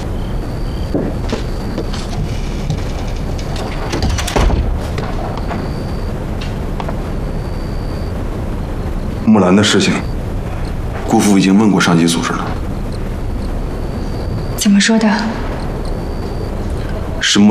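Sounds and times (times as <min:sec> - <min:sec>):
steady rain-like hiss: 0:00.0 - 0:17.5
door being closed with a dull heavy thud: 0:00.9 - 0:05.7
speech: 0:09.3 - 0:10.1, 0:11.2 - 0:12.6, 0:14.6 - 0:15.4, 0:17.3 - 0:17.5.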